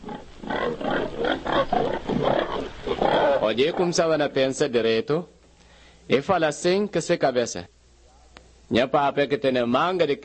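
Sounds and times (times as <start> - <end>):
pig grunting and squealing: 0.0 - 4.1
speech: 3.5 - 5.4, 6.1 - 7.8, 8.7 - 10.2.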